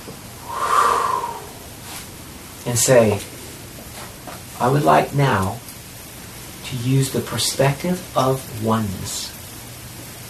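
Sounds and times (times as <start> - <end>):
person taking a breath: 0.4 - 2.0
speech: 2.6 - 3.4, 4.6 - 5.6, 6.7 - 9.4.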